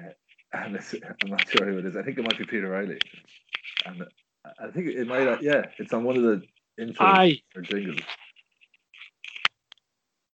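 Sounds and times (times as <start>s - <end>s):
speech: 0.6s - 8.2s
paper rustling and crinkling: 1.2s - 4.0s, 5.0s - 9.6s.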